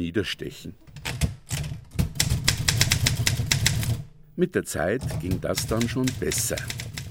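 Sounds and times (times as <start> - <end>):
speech: 0.0 - 1.2, 4.4 - 6.8
typing on a manual typewriter: 0.9 - 4.1, 5.0 - 7.0.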